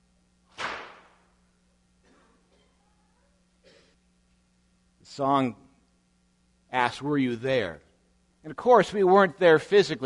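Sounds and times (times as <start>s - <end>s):
whip cracking: 0.5s - 1.2s
speech: 5.1s - 5.6s, 6.7s - 10.0s.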